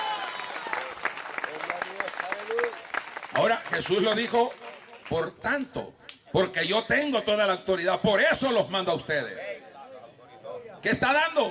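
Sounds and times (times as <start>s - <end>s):
audience applauding: 0.0s - 5.2s
speech: 3.4s - 9.4s, 10.8s - 11.5s.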